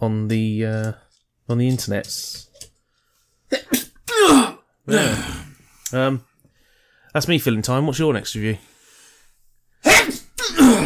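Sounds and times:
speech: 0.0s - 2.5s, 3.5s - 6.3s, 7.1s - 8.7s
loud person sneezing: 3.5s - 5.5s, 9.8s - 10.8s.

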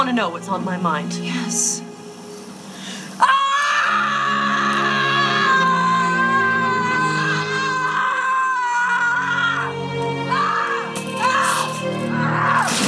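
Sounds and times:
speech: 0.0s - 1.9s, 3.2s - 3.4s
dubbed-in movie scream with shrill wavering pitch: 3.2s - 12.7s.

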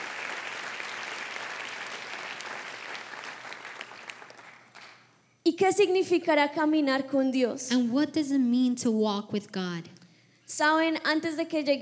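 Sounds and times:
audience applauding: 0.0s - 5.2s
speech: 5.5s - 9.9s, 10.5s - 11.8s.

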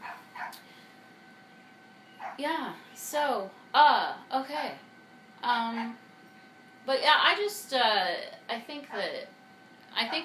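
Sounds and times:
dog barking: 0.0s - 0.6s, 2.2s - 2.4s, 5.8s - 6.0s, 10.1s - 10.2s
dog yipping: 0.0s - 0.6s, 2.2s - 2.4s
speech: 2.4s - 4.8s, 5.4s - 6.0s, 6.8s - 9.4s, 10.0s - 10.2s.

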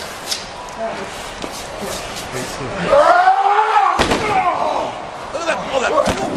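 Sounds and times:
speech: 0.8s - 3.2s
roar of noisy voices: 2.8s - 5.3s
wrestler knocked through a door by a 500-pound man: 3.9s - 4.6s.

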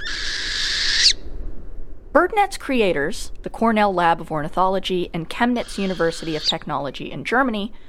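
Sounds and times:
northern hawk owl screeching call: 0.0s - 1.2s, 5.6s - 6.7s
faint hiss: 0.0s - 7.8s
speech: 2.2s - 7.8s.

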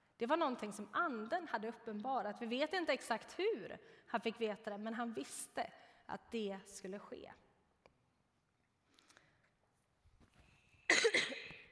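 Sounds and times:
speech: 0.2s - 7.4s
single sharp cough: 10.9s - 11.7s.

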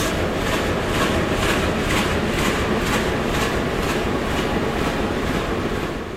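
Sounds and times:
diesel train engine droning: 0.0s - 6.1s.

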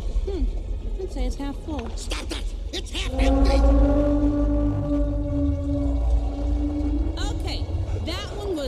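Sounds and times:
speech: 1.1s - 4.0s
whale call, low sustained moan: 3.0s - 8.6s.

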